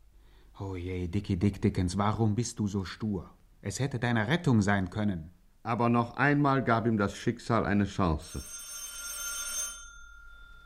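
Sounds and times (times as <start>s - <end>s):
speech: 0.6s - 8.6s
telephone bell ringing: 8.2s - 10.6s.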